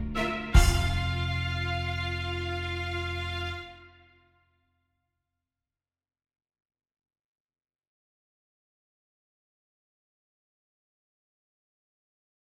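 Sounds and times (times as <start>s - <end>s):
horns playing two-note slurs in fifths: 0.2s - 3.9s.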